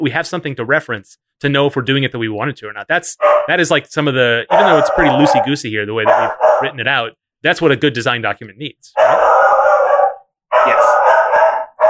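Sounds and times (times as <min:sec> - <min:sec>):
speech: 0:00.0 - 0:09.4
dogs barking: 0:03.2 - 0:03.6, 0:04.5 - 0:06.8, 0:09.0 - 0:11.8.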